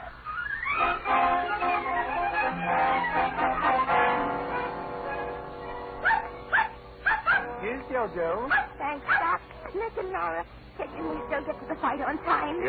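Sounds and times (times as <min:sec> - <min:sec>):
dog barking and yelping: 0:00.0 - 0:07.6, 0:08.5 - 0:09.4
speech: 0:08.0 - 0:12.6.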